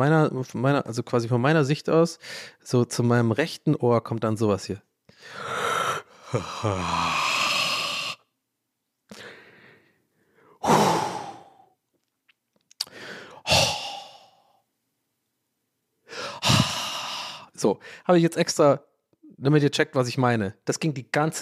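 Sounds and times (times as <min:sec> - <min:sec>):
speech: 0:00.0 - 0:05.6, 0:06.3 - 0:07.3, 0:17.6 - 0:21.4
person imitating a man in a sauna sighing loudly: 0:05.2 - 0:08.3, 0:10.6 - 0:11.8, 0:12.8 - 0:14.6, 0:16.1 - 0:17.6.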